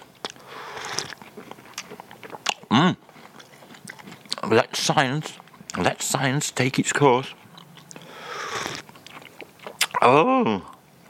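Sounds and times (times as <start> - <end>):
crunchy chewing of a hard cream-filled biscuit: 0.0 - 5.8, 7.2 - 10.0
slurping a hot drink from a cup: 0.4 - 1.2, 7.9 - 8.9
speech: 2.8 - 3.0, 4.5 - 7.4, 10.0 - 10.7.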